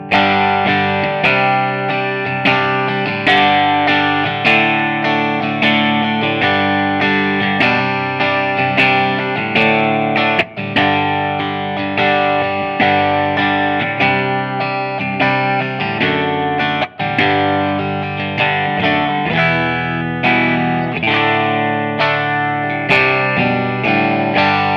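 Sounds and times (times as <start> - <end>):
clean electric guitar: 0.0 - 24.7.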